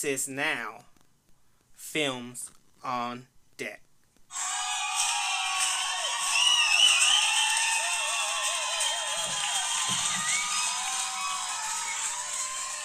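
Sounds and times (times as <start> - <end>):
speech: 0.0 - 0.9, 1.9 - 4.5
canned crowd cheering and applauding: 4.3 - 12.8
whistles and whoops: 4.3 - 12.8.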